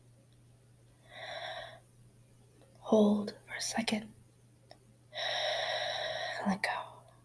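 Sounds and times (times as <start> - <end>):
faint low hum: 0.0 - 7.2
deep breath in: 1.0 - 1.8, 5.2 - 6.4
speech: 2.9 - 4.2, 6.4 - 6.8.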